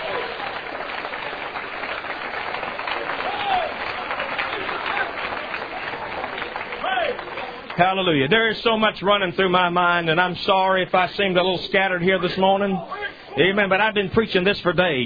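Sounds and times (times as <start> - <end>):
church audience clapping: 0.0 - 9.5
speech: 7.8 - 15.0.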